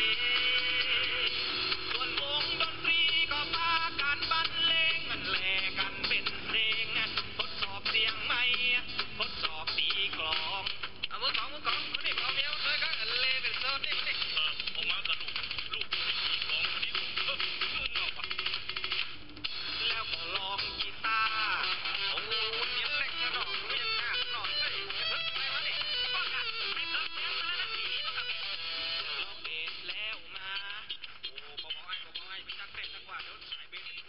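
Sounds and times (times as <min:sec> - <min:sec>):
man singing Thai music over shortwave radio: 0:00.0 - 0:34.0
shortwave radio hiss: 0:11.4 - 0:22.3, 0:26.9 - 0:34.0.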